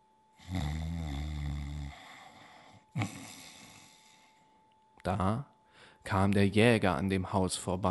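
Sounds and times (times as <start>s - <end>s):
loud rumbling snore: 0.4s - 2.4s, 3.0s - 4.2s
speech: 5.0s - 7.8s.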